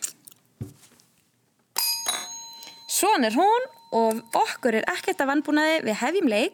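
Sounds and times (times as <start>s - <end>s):
soft knocks and handling noises: 0.6s - 1.3s
quiz team's bright metallic buzzer bell ringing: 1.8s - 4.8s
speech: 3.0s - 6.5s.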